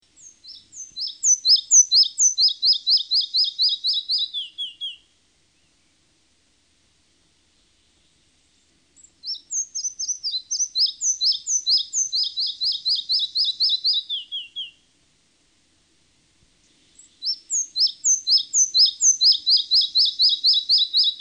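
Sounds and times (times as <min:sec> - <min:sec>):
red-breasted flycatcher calling: 0:00.0 - 0:05.7, 0:09.0 - 0:14.8, 0:16.7 - 0:21.1.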